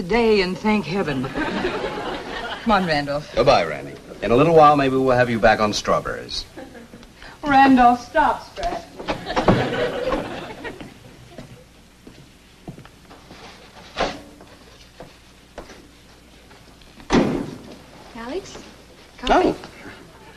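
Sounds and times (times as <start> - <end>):
speech: 0.0 - 1.9, 2.6 - 6.5, 7.4 - 8.9
people chuckling: 1.2 - 4.2, 6.4 - 7.1, 9.0 - 11.7, 19.8 - 20.3
door opening and closing with sharp thuds: 9.0 - 9.8, 17.1 - 17.7.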